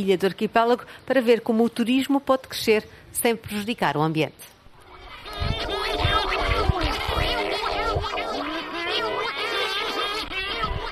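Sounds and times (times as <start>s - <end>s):
speech: 0.0s - 4.5s
Cory's shearwater colony calling: 4.7s - 10.9s.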